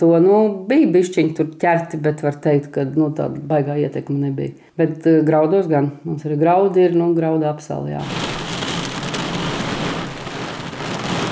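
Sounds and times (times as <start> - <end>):
speech: 0.0 - 8.4
steady dense rain falling on a farm: 8.0 - 11.3.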